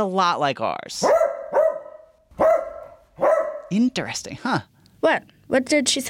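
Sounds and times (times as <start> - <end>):
speech: 0.0 - 1.3, 3.7 - 6.0
Pointer dog barking: 1.0 - 3.8.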